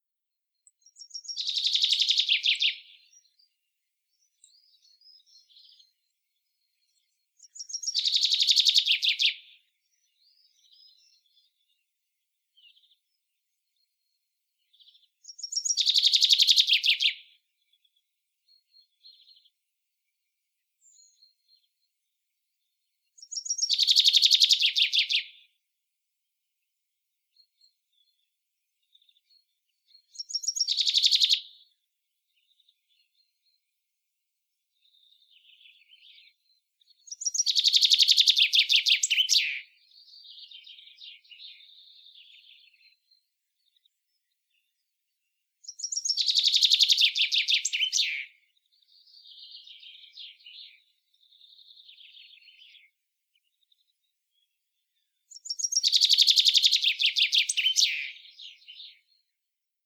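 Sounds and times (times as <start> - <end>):
common chaffinch singing: 0.7 - 3.4, 6.8 - 11.5, 14.7 - 17.3, 23.2 - 25.5, 29.9 - 31.7, 34.8 - 43.0, 45.6 - 53.8, 55.3 - 59.2.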